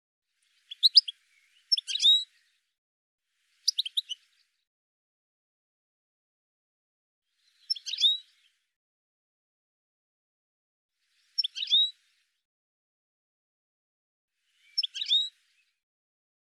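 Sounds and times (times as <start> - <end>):
high chattering bird calls: 0.6 - 2.4, 3.6 - 4.2, 7.4 - 8.4, 14.6 - 15.4.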